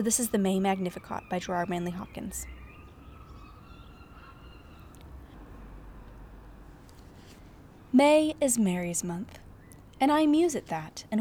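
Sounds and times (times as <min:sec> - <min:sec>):
speech: 0:00.0 - 0:02.6, 0:08.0 - 0:09.4, 0:10.0 - 0:11.1
thin faint bird calls and whistles outside a flat in Scotland: 0:00.0 - 0:05.0
brief bird chirps: 0:00.0 - 0:05.2, 0:09.3 - 0:10.5
steady wash of outdoor noise: 0:00.0 - 0:11.1.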